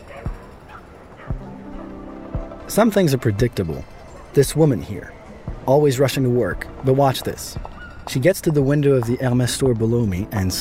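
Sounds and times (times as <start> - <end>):
dogs whimpering: 0.0 - 1.9
dogs barking on a city street: 0.0 - 2.6
speech: 2.7 - 10.6.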